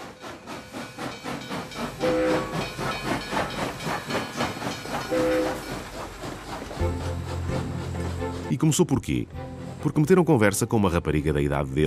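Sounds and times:
steam train hissing: 0:00.0 - 0:08.5
steam train chugging: 0:00.0 - 0:11.8
steam train whistle blasts: 0:02.0 - 0:02.4, 0:05.1 - 0:05.6
speech: 0:08.6 - 0:11.8.

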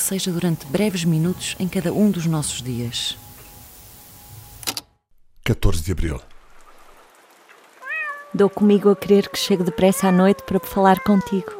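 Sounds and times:
soft hiss: 0:00.0 - 0:11.5
speech: 0:00.1 - 0:03.2, 0:05.5 - 0:06.3, 0:08.4 - 0:11.5
cat meowing: 0:07.8 - 0:11.5.

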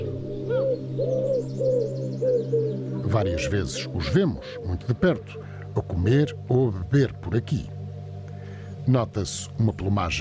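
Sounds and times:
wood pigeon cooing in wooded patches around Monte da Virgem in Vila Nova de Gaia: 0:00.0 - 0:06.4
speech: 0:03.1 - 0:07.8, 0:08.8 - 0:10.2.

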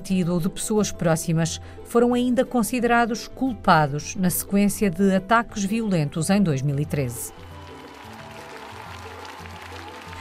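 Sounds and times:
speech: 0:00.0 - 0:07.5
large outdoor crowd applauding outside a courthouse: 0:07.3 - 0:10.1.

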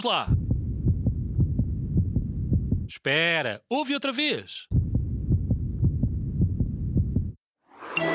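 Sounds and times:
speech: 0:00.0 - 0:00.4, 0:02.9 - 0:04.8
human heart beating: 0:00.3 - 0:02.9, 0:04.7 - 0:07.4.

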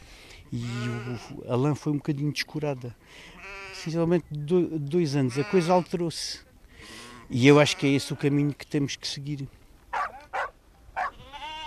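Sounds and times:
speech: 0:00.5 - 0:09.6
sheep bleating in a flock being shorn: 0:00.6 - 0:01.5, 0:03.3 - 0:04.0, 0:05.2 - 0:06.0, 0:06.8 - 0:08.5, 0:11.0 - 0:11.6.

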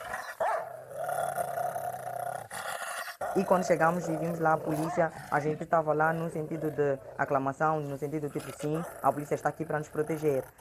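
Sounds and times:
purebred dog used to threaten people in Mozambique growling and barking: 0:00.0 - 0:10.5
speech: 0:03.4 - 0:10.5.

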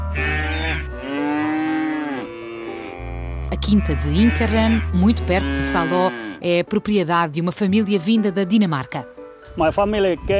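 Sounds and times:
cattle mooing in a rural farming region of Finland: 0:00.0 - 0:06.6
speech: 0:03.7 - 0:10.3.

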